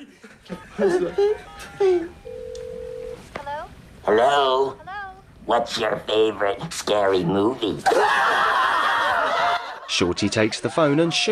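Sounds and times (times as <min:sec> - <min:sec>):
voices and laughter: 0:00.0 - 0:02.1, 0:07.8 - 0:11.3
speech: 0:00.5 - 0:02.2, 0:04.1 - 0:04.8, 0:05.5 - 0:08.6, 0:09.9 - 0:11.3.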